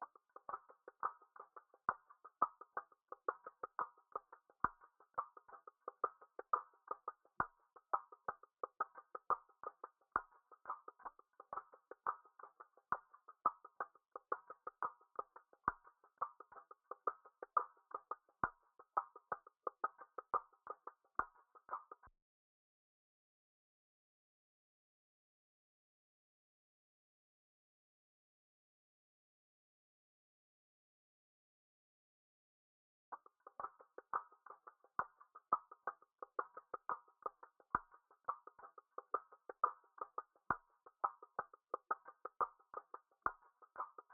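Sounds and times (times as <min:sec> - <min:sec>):
87 BPM Afrobeats percussion loop in D minor: 0:00.0 - 0:22.1, 0:33.1 - 0:44.1.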